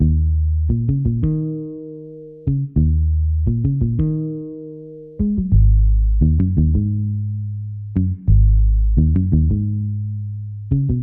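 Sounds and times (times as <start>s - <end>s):
bass line in library music style: 0.0s - 11.0s.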